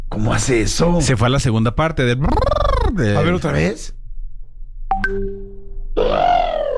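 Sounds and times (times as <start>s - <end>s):
speech: 0.2s - 4.0s
person imitating an elephant's trumpet: 2.2s - 3.4s, 6.0s - 6.7s.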